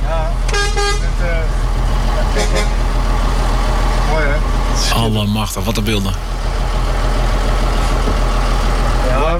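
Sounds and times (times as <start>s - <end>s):
vehicle engines of a slow convoy rumbling: 0.0s - 9.3s
horn toots: 0.5s - 1.2s, 2.3s - 2.8s
speech: 5.0s - 6.8s.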